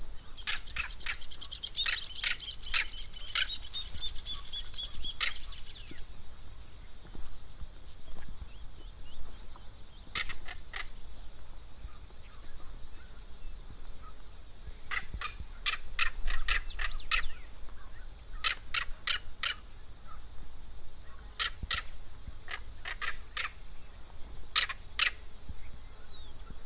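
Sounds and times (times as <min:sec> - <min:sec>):
Southern crested caracara harsh rasping calls in the Pantanal: 0:00.3 - 0:06.0, 0:10.1 - 0:11.0, 0:14.8 - 0:17.5, 0:18.2 - 0:20.2, 0:21.1 - 0:23.7, 0:24.5 - 0:25.3.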